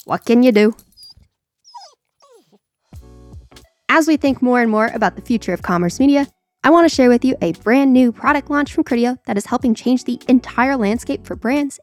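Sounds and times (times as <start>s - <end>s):
speech: 0.0s - 0.9s, 3.9s - 11.8s
dog barking and yipping from another room: 1.8s - 2.6s.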